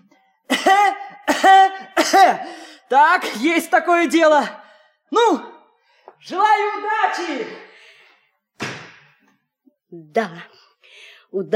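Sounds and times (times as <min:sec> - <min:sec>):
person putting on an exaggerated coughing fit: 0:00.5 - 0:03.4
speech: 0:01.4 - 0:05.5, 0:06.2 - 0:07.7, 0:09.9 - 0:10.6, 0:11.3 - 0:11.5.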